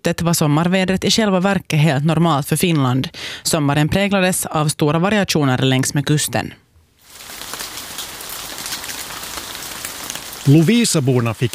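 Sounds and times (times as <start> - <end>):
speech: 0.0 - 6.7, 10.4 - 11.5
heavy rain pattering on a surface: 7.0 - 11.5.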